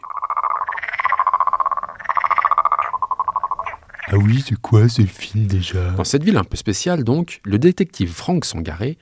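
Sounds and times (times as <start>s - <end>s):
chorus of frogs croaking in pulsing trills: 0.0s - 4.5s
speech: 4.1s - 8.9s.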